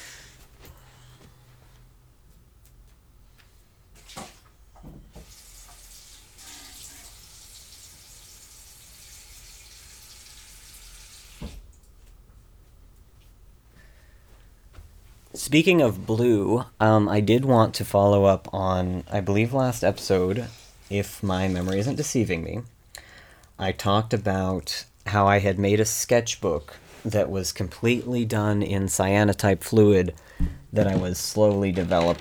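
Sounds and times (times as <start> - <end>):
tap water running into a container while changing blue paint water: 4.0 - 12.0
speech: 15.5 - 22.7, 23.6 - 32.1.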